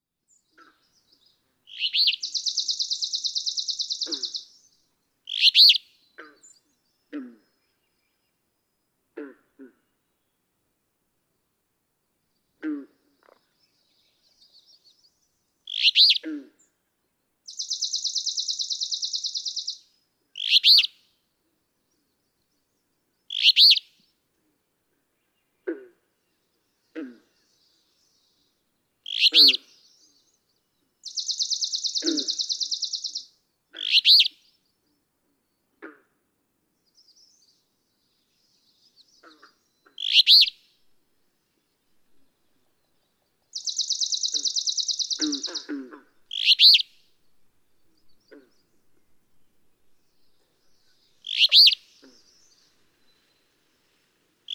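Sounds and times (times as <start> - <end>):
Alder Flycatcher calling: 1.7 - 4.7, 5.3 - 5.9, 15.7 - 16.2, 17.5 - 19.8, 20.4 - 21.0, 23.3 - 23.9, 29.0 - 30.2, 31.0 - 34.4, 39.9 - 40.6, 43.5 - 47.2, 50.2 - 53.5.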